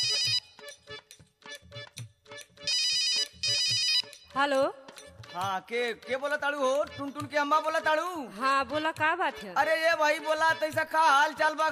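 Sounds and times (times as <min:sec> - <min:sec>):
bright electronic phone ringtone melody: 0:00.0 - 0:00.8, 0:02.6 - 0:04.2
speech: 0:04.4 - 0:11.6.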